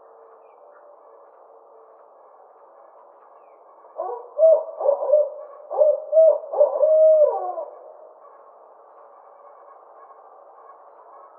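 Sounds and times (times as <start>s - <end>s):
Barred owl giving low hoots: 4.0s - 8.1s.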